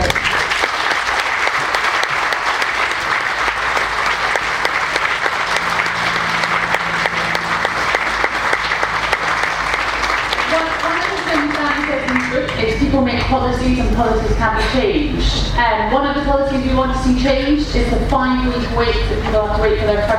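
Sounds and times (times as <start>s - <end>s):
crowd applauding: 0.0s - 13.2s
faint low hum: 2.2s - 20.1s
speech: 13.3s - 20.1s.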